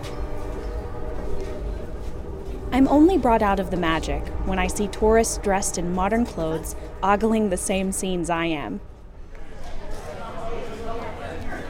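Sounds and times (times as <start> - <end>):
train rumbling past outside a Union soldier hospital: 0.0 - 11.6
speech: 2.7 - 8.9.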